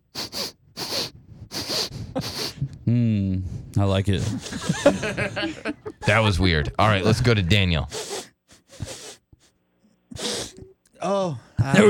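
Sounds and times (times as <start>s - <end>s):
loud nasal sniffs: 0.0s - 2.7s, 7.9s - 10.7s
speech: 2.9s - 8.1s, 11.1s - 11.8s
laughter: 4.1s - 7.7s, 11.6s - 11.8s.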